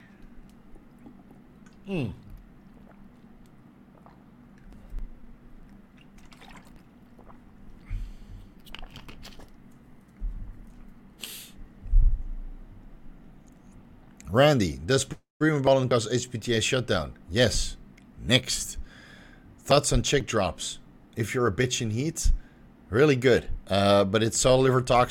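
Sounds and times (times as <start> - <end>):
person drinking water: 0.0 - 9.6
low hum: 0.0 - 25.0
swallowing: 0.2 - 9.1
speech: 1.8 - 2.2, 14.3 - 18.8, 19.7 - 25.0.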